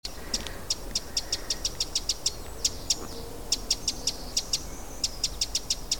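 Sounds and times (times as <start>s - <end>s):
Eurasian wren Troglodytes troglodytes clicking tick calls: 0.0s - 5.9s
low background noise: 0.1s - 5.9s.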